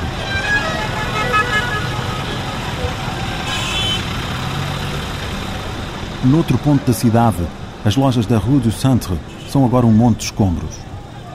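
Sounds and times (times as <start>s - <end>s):
short car horn toots: 0.0s - 2.7s, 3.3s - 4.2s
dense roar of busy street traffic with rumbling engines: 0.0s - 11.3s
speech: 6.2s - 10.9s.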